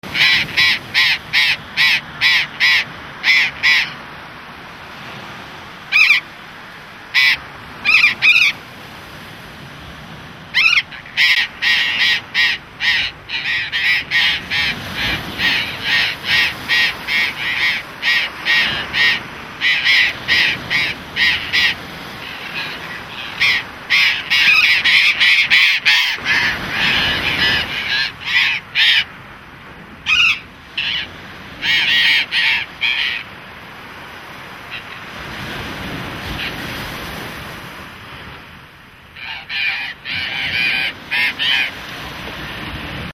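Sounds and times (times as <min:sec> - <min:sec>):
burrowing parrot calling: 0:00.1 - 0:04.0, 0:05.9 - 0:06.3, 0:07.1 - 0:08.6, 0:10.5 - 0:29.1, 0:30.1 - 0:33.3, 0:39.2 - 0:41.8.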